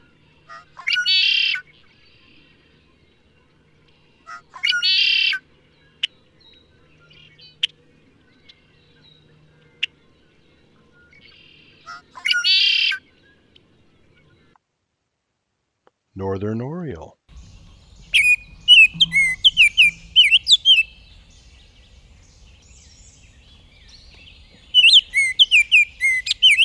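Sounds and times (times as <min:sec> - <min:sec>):
red-winged blackbird singing a gurgling buzzy trill: 0:00.0 - 0:14.6, 0:17.3 - 0:26.6
speech: 0:16.2 - 0:17.2
red-winged blackbird sharp single chip notes: 0:17.3 - 0:26.6.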